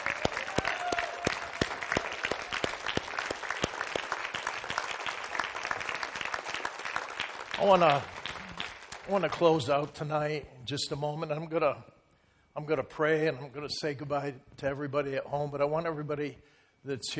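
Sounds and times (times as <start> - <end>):
large standing audience applauding: 0.0 - 9.7
speech: 7.6 - 8.2, 9.1 - 11.9, 12.6 - 17.1.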